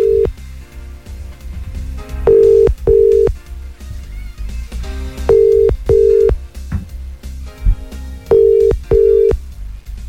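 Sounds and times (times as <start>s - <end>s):
ringing tones of an outgoing telephone call: 0.0s - 0.4s, 2.3s - 3.4s, 5.3s - 6.4s, 8.3s - 9.4s
music: 0.0s - 10.0s.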